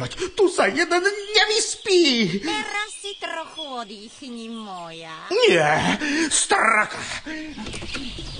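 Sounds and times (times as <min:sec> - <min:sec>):
speech: 0:00.0 - 0:08.3
magpie calling: 0:00.8 - 0:05.6.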